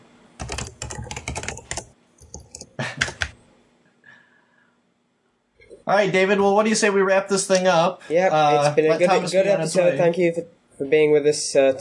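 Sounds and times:
rapid computer keyboard typing: 0.4s - 3.4s
speech: 5.9s - 11.8s.

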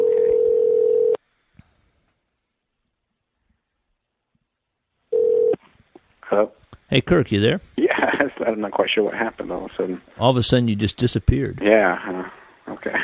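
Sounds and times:
telephone dial tone: 0.0s - 1.2s, 5.1s - 5.6s
speech: 6.3s - 13.0s.

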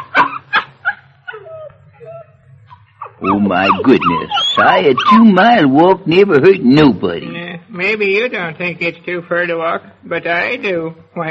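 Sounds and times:
laughter: 0.0s - 7.1s
faint steady low hum: 0.0s - 11.3s
small dog yipping outdoors in cold evening snow: 0.9s - 5.5s
small dog whimpering whines: 1.3s - 5.6s
speech: 3.2s - 11.3s.

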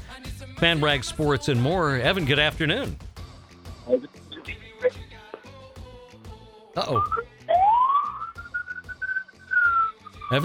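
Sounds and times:
speech: 0.6s - 3.0s, 3.9s - 4.2s, 6.8s - 7.3s
ambulance siren wailing in New York city traffic: 7.0s - 10.4s.

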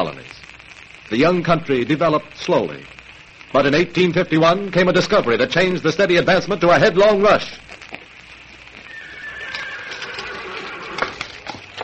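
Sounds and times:
speech: 0.0s - 0.4s, 1.1s - 7.6s
horse hooves clopping and stamping: 7.9s - 11.8s
horse whinnying: 8.9s - 11.2s.

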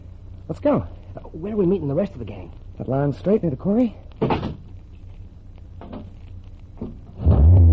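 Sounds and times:
speech: 0.5s - 4.6s
low car engine rumbling and revving: 7.2s - 7.7s.

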